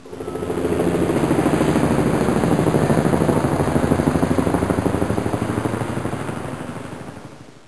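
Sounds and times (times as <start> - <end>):
helicopter flying by: 0.0 - 7.6.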